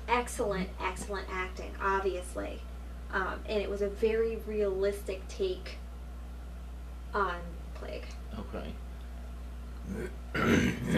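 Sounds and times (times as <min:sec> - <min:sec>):
steady low hum: 0:00.0 - 0:10.9
speech: 0:00.2 - 0:05.8, 0:07.1 - 0:08.8, 0:09.9 - 0:10.9
person clearing throat: 0:09.9 - 0:10.9.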